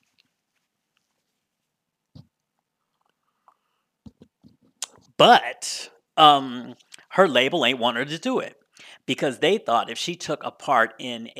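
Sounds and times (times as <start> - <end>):
person sipping an energy drink: 2.9 - 3.8
speech: 5.2 - 11.3.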